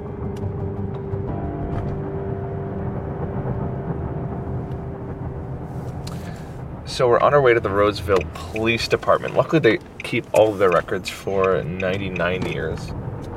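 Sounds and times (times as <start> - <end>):
car engine drone in a moving car cabin: 0.0 - 13.3
low road rumble in a moving car cabin: 0.0 - 13.3
speech: 6.9 - 13.0
light ticks in a car cabin: 8.2 - 13.3.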